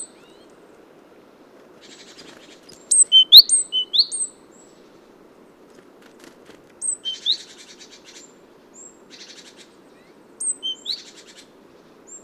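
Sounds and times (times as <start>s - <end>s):
great tit Parus major calling: 1.8s - 4.4s, 6.8s - 8.4s, 9.1s - 11.5s.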